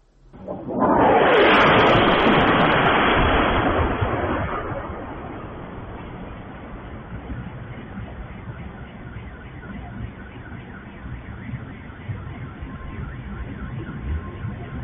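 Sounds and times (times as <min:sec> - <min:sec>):
massive explosion of an aviation bomb released from a Su-34 jet: 0:00.3 - 0:08.8
long roaring rumble of an aviation bomb explosion: 0:00.3 - 0:10.3.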